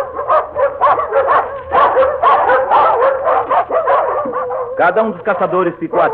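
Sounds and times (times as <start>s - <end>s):
pack of hunting dogs barking and yelping while running through the woods: 0.0s - 6.1s
speech: 4.8s - 6.1s.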